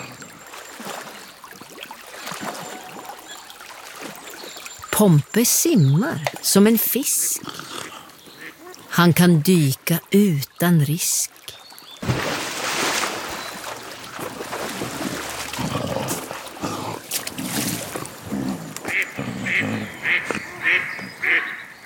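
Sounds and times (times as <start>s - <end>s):
noisy splashy water and movement: 0.0s - 20.8s
speech: 5.0s - 7.7s, 9.0s - 11.4s
duck quacking as it rushes out of a stream onto land: 18.9s - 21.8s.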